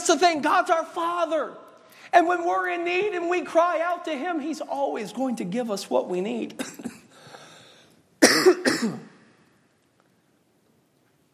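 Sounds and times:
speech: 0.1 - 7.0, 8.8 - 9.1
harsh raspy cough from lung scarring after cancer and chemotherapy: 6.6 - 7.2, 8.2 - 9.2.

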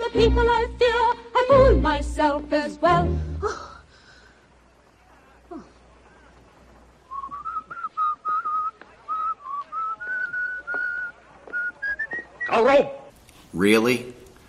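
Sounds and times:
speech: 0.1 - 3.7, 12.7 - 12.9, 13.5 - 14.1
person whistling a bright cheerful tune: 7.1 - 12.5.

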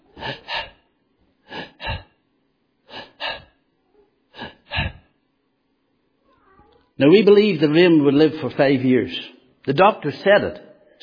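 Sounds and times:
voice imitating a sick child's labored gasping breathing: 0.0 - 2.2, 2.9 - 3.6, 4.3 - 5.1
speech: 7.0 - 10.7.

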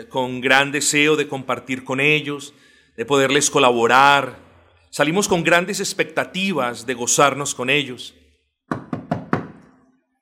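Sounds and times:
speech: 0.0 - 8.2
knocking on a wooden door: 8.7 - 9.6.

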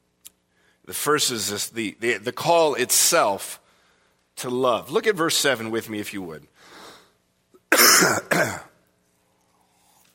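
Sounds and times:
speech: 0.8 - 3.6, 4.4 - 6.8, 7.7 - 8.7
person coughing harshly with throat clearing: 7.7 - 8.8.

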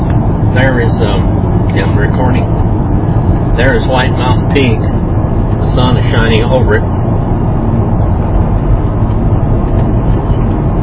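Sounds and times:
loud steady roar of road traffic: 0.0 - 10.8
speech: 0.6 - 5.0, 5.7 - 7.0.

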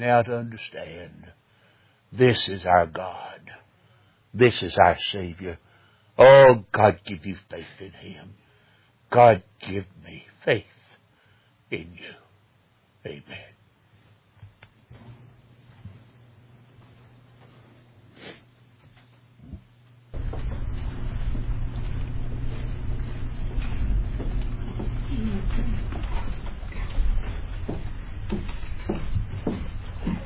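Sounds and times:
speech: 0.0 - 1.4, 2.1 - 3.6, 4.4 - 5.6, 6.2 - 8.4, 9.1 - 10.8, 11.7 - 12.2, 13.0 - 13.5
broadband noise: 14.9 - 30.2
doors opening and shutting: 20.2 - 30.2.

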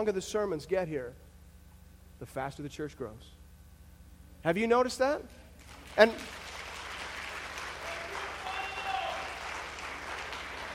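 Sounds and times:
speech: 0.0 - 1.3, 2.2 - 3.4, 4.4 - 5.4, 6.0 - 6.4
audience clapping: 5.6 - 10.7.

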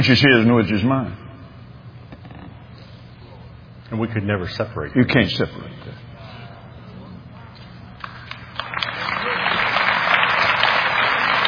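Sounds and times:
speech: 0.0 - 1.2, 3.9 - 6.0
audience applauding: 8.0 - 11.4.

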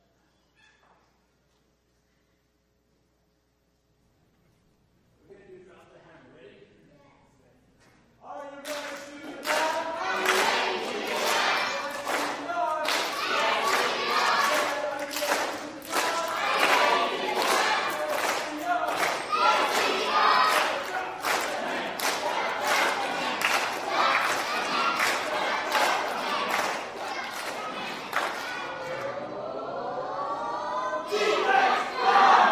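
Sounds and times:
clapping: 8.6 - 28.6
group of children shouting a team cheer in unison: 9.5 - 32.5.

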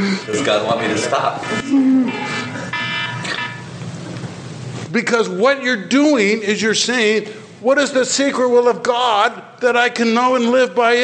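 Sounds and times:
alarm going off with high electronic beeping tones: 0.0 - 3.8
constant noisy hum: 0.0 - 11.0
speech: 0.2 - 2.5, 4.9 - 11.0.

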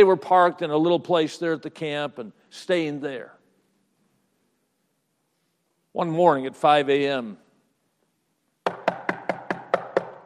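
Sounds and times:
speech: 0.0 - 3.4, 6.0 - 7.4
knocking on a camper door: 8.7 - 10.2.

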